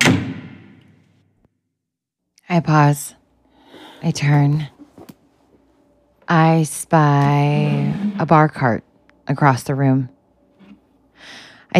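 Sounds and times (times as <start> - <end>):
heavy apartment door slamming shut: 0.0 - 0.8
speech: 2.5 - 3.2, 4.0 - 4.8, 6.3 - 10.2.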